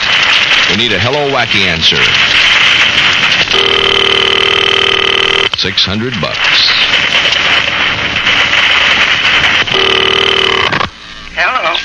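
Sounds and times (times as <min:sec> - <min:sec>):
quieter telephone line hum: 0:00.0 - 0:11.8
speech: 0:00.8 - 0:02.3, 0:03.5 - 0:04.2, 0:05.6 - 0:06.7, 0:09.7 - 0:10.6
sharp telephone ring tone: 0:03.5 - 0:05.5, 0:09.7 - 0:10.8
telephone being dialed: 0:03.5 - 0:05.5, 0:09.7 - 0:10.8
loud hissy telephone line: 0:03.6 - 0:05.7, 0:09.7 - 0:11.8.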